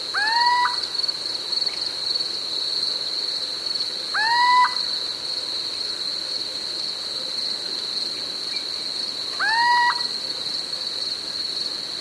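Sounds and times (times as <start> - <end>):
little owl calling with short rising mewing notes: 0.1 - 0.8, 4.2 - 4.9, 9.4 - 10.1.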